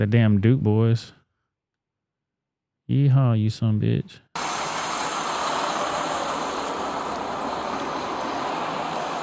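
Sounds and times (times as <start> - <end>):
speech: 0.0 - 1.2, 2.9 - 4.5
car engine idling at accident scene: 4.4 - 9.2.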